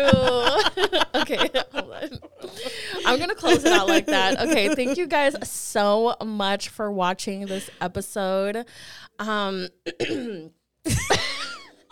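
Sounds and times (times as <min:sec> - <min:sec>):
laughter: 0:00.0 - 0:05.4
speech: 0:03.1 - 0:11.4
person clearing throat: 0:09.9 - 0:10.5.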